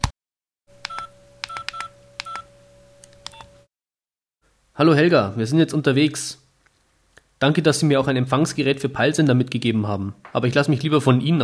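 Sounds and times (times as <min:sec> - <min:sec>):
telephone dial tone: 0:00.8 - 0:02.5
touch-tone telephone key beeps: 0:00.9 - 0:02.4
speech: 0:04.8 - 0:06.4, 0:07.4 - 0:11.4.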